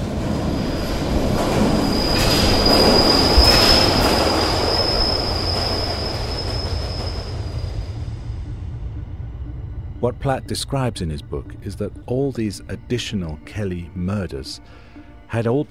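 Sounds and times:
subway train rumbling past: 0.0s - 15.6s
subway train metallic wheel squeal: 0.4s - 8.2s
speech: 10.0s - 15.6s.

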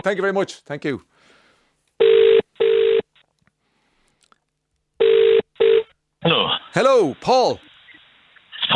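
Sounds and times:
speech: 0.0s - 1.4s, 6.2s - 7.7s
phone line ringing while a call connects: 2.0s - 3.1s, 5.0s - 5.9s.

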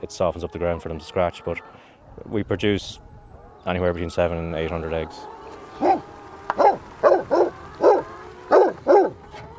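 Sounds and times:
speech: 0.0s - 3.0s, 3.6s - 6.1s
Pyrenean Mountain Dog barking: 5.8s - 6.0s, 6.6s - 9.2s.

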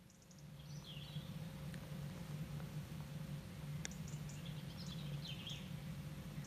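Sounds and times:
robins singing at dawn: 0.0s - 1.6s, 3.6s - 6.4s
steady low hum: 0.0s - 6.4s.

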